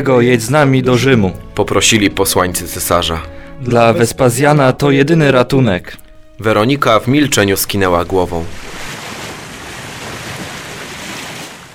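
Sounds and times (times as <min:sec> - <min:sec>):
speech: 0:00.0 - 0:08.8
sea waves washing: 0:06.1 - 0:11.7.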